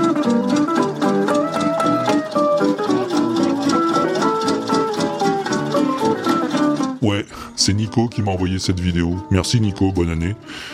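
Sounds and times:
tractor engine chugging: 0.0 - 6.9
lively street music played by musicians: 0.0 - 10.7
speech: 7.6 - 10.7.

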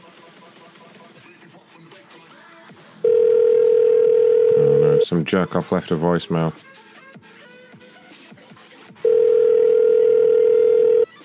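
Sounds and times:
phone call ringing tone: 3.0 - 5.1, 9.0 - 11.1
speech: 5.1 - 6.7.

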